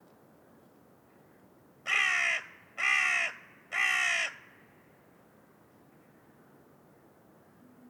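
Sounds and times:
carrion crow Corvus corone cawing: 1.9s - 4.6s.

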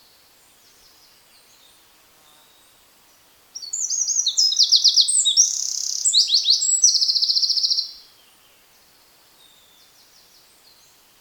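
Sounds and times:
Eurasian wren Troglodytes troglodytes singing: 3.6s - 8.0s.

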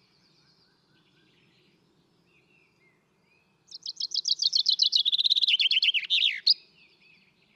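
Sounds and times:
common chaffinch song: 3.7s - 6.8s.

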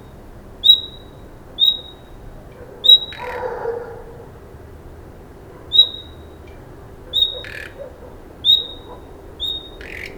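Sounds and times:
Common nightingale Luscinia megarhynchos uttering brief whistles: 0.6s - 2.0s, 2.8s - 3.3s, 5.8s - 6.2s, 8.4s - 10.1s.

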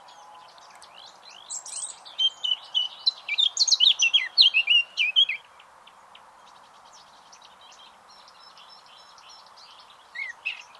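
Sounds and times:
Eurasian blackcap Sylvia atricapilla warbling song: 0.0s - 10.7s
faint background hiss: 0.0s - 10.7s.

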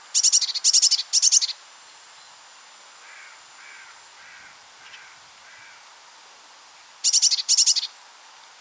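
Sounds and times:
Eurasian blue tit Cyanistes caeruleus calling: 0.1s - 1.6s, 3.0s - 5.8s, 7.0s - 7.9s.

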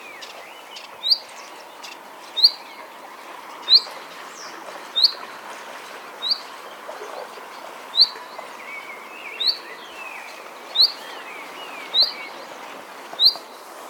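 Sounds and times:
common chaffinch calling: 0.0s - 2.8s, 3.6s - 3.9s, 5.0s - 5.2s, 6.2s - 7.3s, 7.9s - 12.4s, 13.2s - 13.6s
soft bird chatter: 0.0s - 5.2s, 6.2s - 13.8s.

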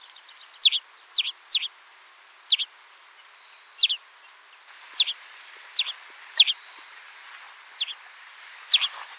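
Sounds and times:
European greenfinch Chloris chloris chirping calls: 0.0s - 1.8s, 2.5s - 4.2s, 5.0s - 5.2s, 5.8s - 7.0s, 7.8s - 8.0s
faint background hiss: 0.0s - 9.1s.

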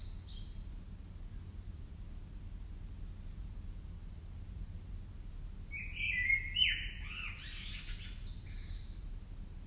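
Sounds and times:
common blackbird Turdus merula song: 0.0s - 0.6s, 5.7s - 9.1s
steady low hum: 0.0s - 9.6s.

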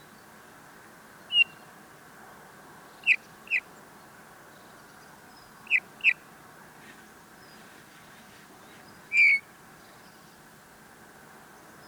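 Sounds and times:
low steady background noise: 0.0s - 11.8s
Eurasian bullfinch Pyrrhula pyrrhula making mellow piping calls: 1.3s - 1.6s, 9.1s - 9.4s.

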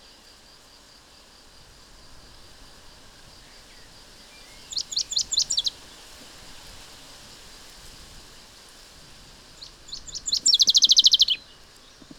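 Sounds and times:
background hiss: 0.0s - 12.1s
common chaffinch Fringilla coelebs calls: 4.6s - 5.8s, 9.6s - 11.4s.

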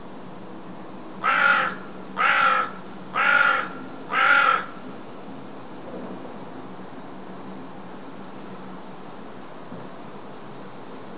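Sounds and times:
Corvus corone carrion crow cawing: 1.2s - 4.8s.

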